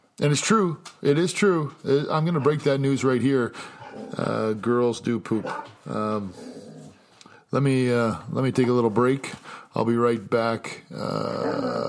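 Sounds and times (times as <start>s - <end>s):
speech: 0.2s - 6.5s, 7.5s - 11.8s
female dogs low grumbling and soft whimpers: 2.2s - 2.8s, 3.6s - 4.5s, 5.3s - 7.0s, 10.9s - 11.8s
female dog whining growl: 6.2s - 7.0s, 11.0s - 11.8s.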